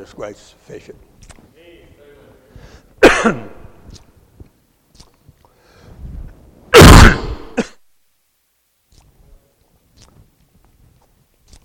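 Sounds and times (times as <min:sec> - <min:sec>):
speech: 0:00.0 - 0:01.5, 0:03.2 - 0:04.0
person coughing: 0:03.0 - 0:03.6, 0:06.8 - 0:07.8
person clearing throat: 0:03.0 - 0:03.7, 0:06.8 - 0:07.8.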